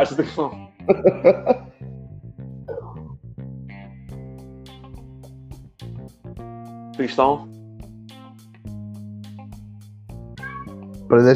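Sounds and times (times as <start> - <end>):
speech: 0.0 - 1.7, 7.0 - 7.6, 11.1 - 11.3
laughter: 0.9 - 1.6
cat giving a deep meow: 10.4 - 10.9.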